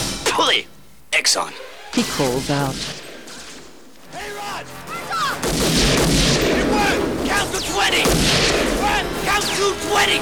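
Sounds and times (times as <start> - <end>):
speech: 0.4 - 3.1, 6.8 - 10.2
people shouting: 1.4 - 10.2
loud sustained gunfire: 1.6 - 10.2.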